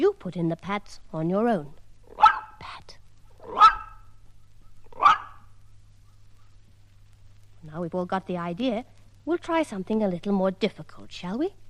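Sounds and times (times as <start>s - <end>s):
speech: 0.0s - 1.8s, 7.6s - 11.6s
dog barking: 2.1s - 2.6s, 3.4s - 4.1s, 4.9s - 5.5s.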